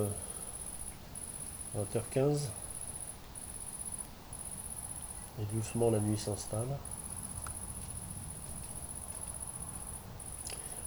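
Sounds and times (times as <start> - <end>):
speech: 0.0 - 0.3, 1.7 - 2.6, 5.4 - 6.9
great green bush-cricket chirping at dusk beside a river: 0.0 - 10.8.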